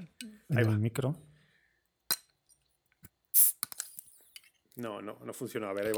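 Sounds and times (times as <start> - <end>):
speech: 0.2 - 1.3, 4.8 - 5.9
glass beer bottle clicks: 3.4 - 4.4.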